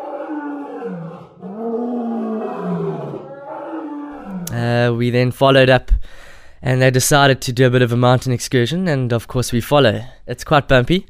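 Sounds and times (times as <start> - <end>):
male lion roaring: 0.0 - 4.6
speech: 4.6 - 11.0.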